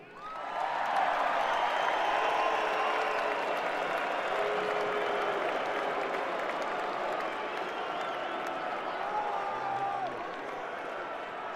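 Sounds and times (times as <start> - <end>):
faint cheering: 0.0 - 11.5
large crowd applauding: 0.0 - 11.5.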